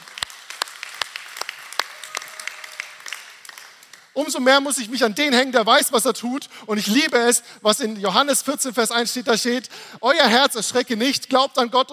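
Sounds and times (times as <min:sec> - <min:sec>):
crowd applauding: 0:00.0 - 0:04.2
speech: 0:04.2 - 0:11.9.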